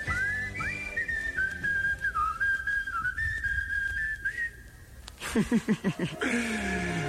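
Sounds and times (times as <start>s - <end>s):
person whistling a sliding melody along to music: 0.0s - 4.6s
laughter: 5.2s - 7.0s.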